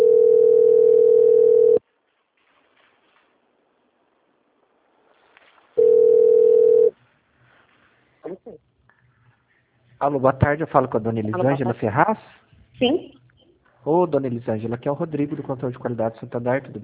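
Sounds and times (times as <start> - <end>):
telephone line tones during a bank call transfer: 0.0 - 1.8, 5.8 - 6.9
speech: 10.0 - 13.2, 13.8 - 16.8.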